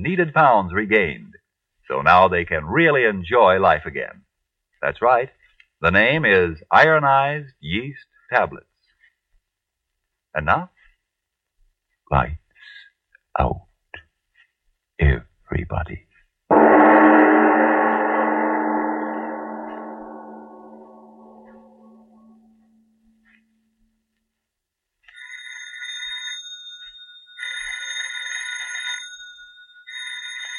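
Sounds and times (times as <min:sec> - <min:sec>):
speech: 0:00.0 - 0:01.3, 0:01.9 - 0:04.2, 0:04.8 - 0:08.7, 0:10.3 - 0:10.8, 0:12.1 - 0:12.4, 0:13.4 - 0:13.7, 0:15.0 - 0:16.1
decaying resonant musical chord: 0:16.5 - 0:23.3
telephone ringing in bright buzzing bursts: 0:25.1 - 0:30.5.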